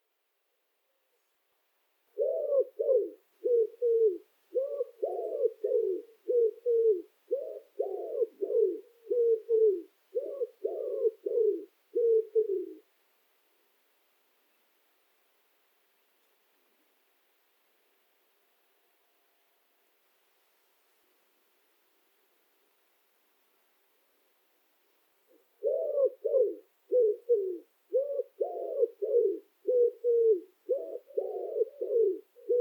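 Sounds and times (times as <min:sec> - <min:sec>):
common wood pigeon singing: 0:02.1 - 0:12.8, 0:25.3 - 0:32.6.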